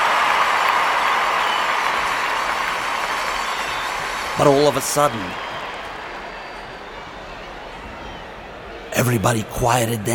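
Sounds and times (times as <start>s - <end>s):
crowd clapping at a trick: 0.0s - 6.7s
crowd cheering at a trick: 0.0s - 10.1s
speech: 4.4s - 5.5s, 9.0s - 10.1s.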